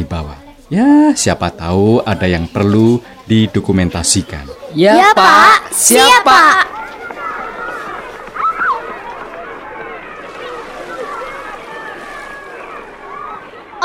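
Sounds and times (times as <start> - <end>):
speech: 0.0 - 6.9
waves breaking and splashing on a black sand beach: 5.6 - 13.8.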